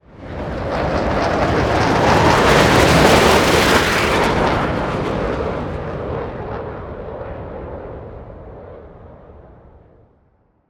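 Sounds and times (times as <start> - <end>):
jet ship passing by: 0.1 - 9.8.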